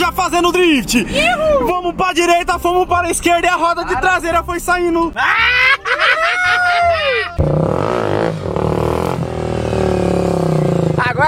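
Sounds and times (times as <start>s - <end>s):
road noise: 0.0s - 11.2s
speech: 0.2s - 6.4s, 7.4s - 8.0s
laughter: 5.2s - 7.4s
motorcycle engine revving hard during a wheelie: 7.3s - 11.2s.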